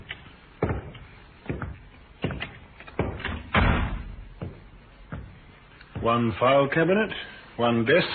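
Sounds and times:
door banging as it swings in: 0:03.0 - 0:04.5
wooden door knocks and thuds as it is worked open: 0:03.0 - 0:05.3
speech: 0:06.0 - 0:08.1.

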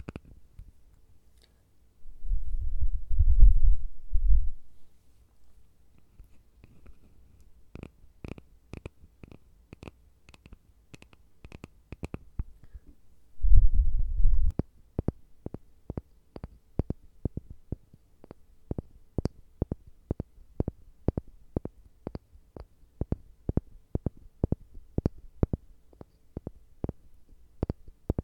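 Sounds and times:
faint hum: 0:00.0 - 0:09.5, 0:10.6 - 0:28.2
low rumbling: 0:02.0 - 0:04.8, 0:13.4 - 0:14.5
light soft tapping clicks: 0:14.5 - 0:28.2.

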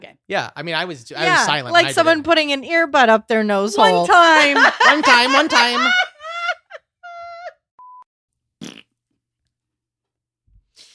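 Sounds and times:
speech: 0:00.3 - 0:06.1
laughter: 0:03.8 - 0:07.6
voice imitating a fart with a buzzy raspberry: 0:08.6 - 0:09.0.

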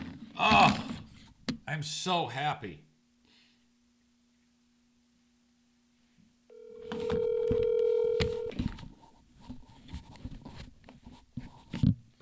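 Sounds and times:
speech: 0:01.7 - 0:02.9
touch-tone telephone dial tone: 0:06.5 - 0:08.6.

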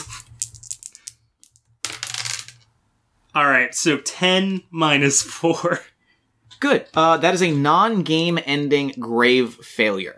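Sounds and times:
two dice rolling across a hard tabletop: 0:00.0 - 0:02.6
speech: 0:03.4 - 0:05.9, 0:06.6 - 0:10.1.

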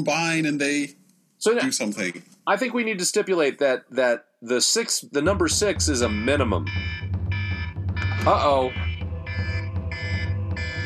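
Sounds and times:
speech: 0:00.0 - 0:07.0, 0:08.2 - 0:08.8
electronic alarm: 0:06.0 - 0:10.8.

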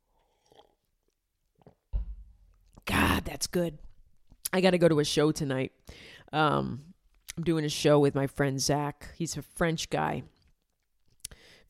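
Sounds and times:
person sipping water: 0:00.0 - 0:01.9
speech: 0:03.3 - 0:10.4.

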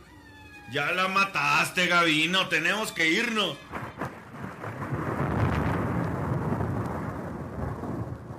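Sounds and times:
speech: 0:00.7 - 0:03.7
loud deep thunder rumble: 0:03.7 - 0:08.3.

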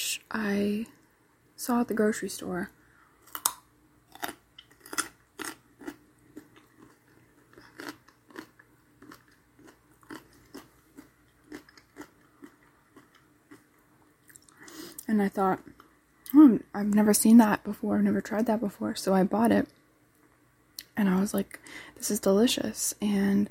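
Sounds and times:
speech: 0:00.2 - 0:01.0, 0:01.6 - 0:02.8, 0:15.2 - 0:19.8, 0:21.0 - 0:23.5
crisp crunching of snacks eaten with Southwest Ranch dip: 0:03.2 - 0:13.7.

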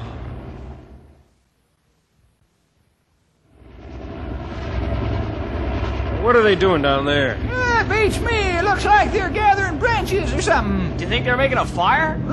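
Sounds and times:
helicopter hovering overhead: 0:03.5 - 0:12.3
speech: 0:06.3 - 0:12.3.

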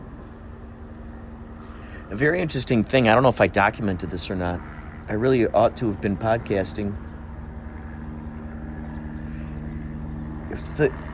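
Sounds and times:
helicopter engine droning overhead: 0:00.0 - 0:11.1
speech: 0:02.1 - 0:07.1, 0:10.6 - 0:11.1.

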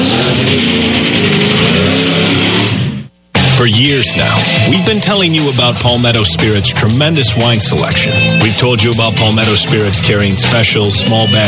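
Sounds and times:
car engine revving: 0:00.0 - 0:03.5
speech: 0:03.8 - 0:11.4.

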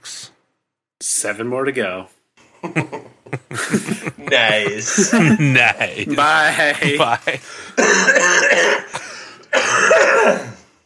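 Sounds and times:
speech: 0:01.2 - 0:03.0, 0:03.6 - 0:09.0
laughter: 0:02.6 - 0:08.1
harsh coughs: 0:07.7 - 0:10.7.

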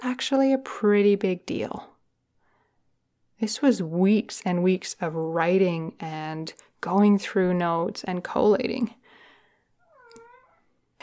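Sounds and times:
speech: 0:00.0 - 0:01.9, 0:03.4 - 0:09.0
soft cat meow: 0:09.8 - 0:10.7.

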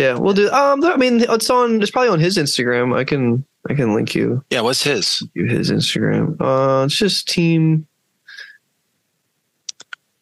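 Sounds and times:
speech: 0:00.0 - 0:07.9
computer mouse clicks: 0:09.7 - 0:10.0.

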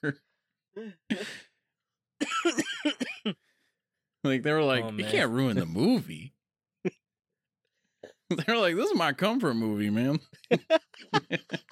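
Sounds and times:
speech: 0:00.0 - 0:01.4, 0:04.2 - 0:07.0, 0:08.3 - 0:11.7
person coughing in short hoarse bursts: 0:00.8 - 0:01.5, 0:02.2 - 0:03.4
laughter: 0:05.0 - 0:06.0, 0:10.3 - 0:11.7.

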